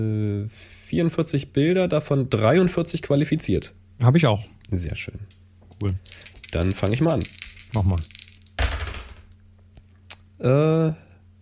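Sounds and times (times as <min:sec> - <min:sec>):
speech: 0:00.0 - 0:08.2, 0:10.4 - 0:11.0
dice clattering onto a hard table: 0:06.0 - 0:09.4.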